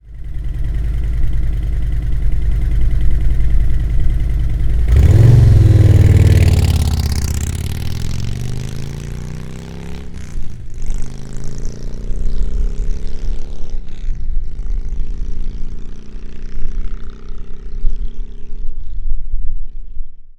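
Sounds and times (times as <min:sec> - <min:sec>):
Touring 107 Slimline 4 taking off: 0:00.9 - 0:13.8.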